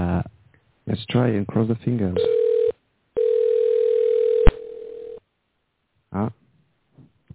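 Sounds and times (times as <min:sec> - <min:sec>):
speech: 0:01.2 - 0:02.4
telephone ringback tone during outgoing call to a cell phone: 0:02.2 - 0:05.2.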